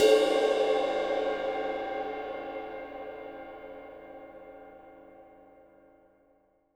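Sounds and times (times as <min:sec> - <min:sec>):
Zildjian 20-inch crash cymbal: 0:00.0 - 0:05.2.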